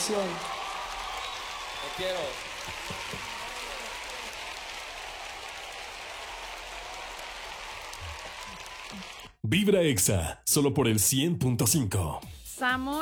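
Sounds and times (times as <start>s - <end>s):
crowd applauding: 0.0s - 9.4s
speech: 0.1s - 0.6s, 1.8s - 3.3s, 8.9s - 13.0s.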